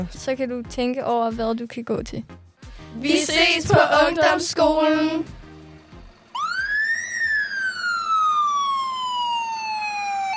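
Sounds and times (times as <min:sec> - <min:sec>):
speech: 0:00.0 - 0:05.4
fire engine siren wailing: 0:06.2 - 0:10.3.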